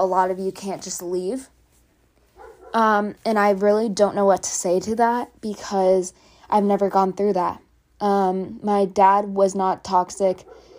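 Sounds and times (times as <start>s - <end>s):
speech: 0.0s - 1.6s, 2.7s - 10.7s
pet dog bark: 2.4s - 2.8s, 10.4s - 10.7s.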